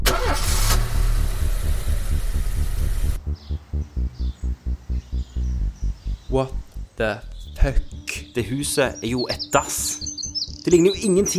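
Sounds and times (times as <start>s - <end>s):
car engine starting: 0.0s - 4.8s
car engine idling: 0.0s - 6.7s
speech: 6.3s - 11.3s.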